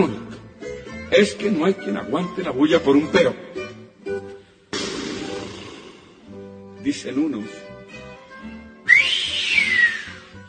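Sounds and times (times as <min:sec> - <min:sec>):
speech: 0:00.0 - 0:00.2, 0:01.1 - 0:03.4, 0:06.8 - 0:07.7
person whistling a sustained rising note: 0:08.8 - 0:10.4.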